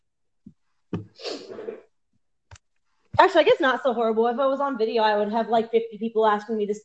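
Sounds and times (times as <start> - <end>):
person sneezing loudly: 1.0 - 1.8
speech: 3.2 - 6.8.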